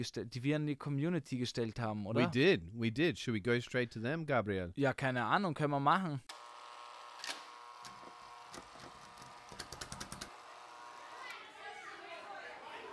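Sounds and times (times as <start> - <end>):
speech: 0.0 - 6.4
children playing outdoors: 11.0 - 12.9.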